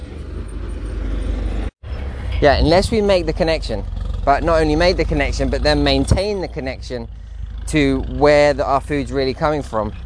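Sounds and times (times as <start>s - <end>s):
lorry engine drone driving past: 0.0s - 10.0s
speech: 2.4s - 10.0s.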